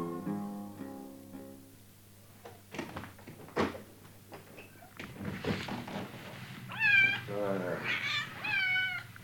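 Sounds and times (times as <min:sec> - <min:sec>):
shuffling movement: 0:02.3 - 0:09.2
cat meowing: 0:06.7 - 0:09.2.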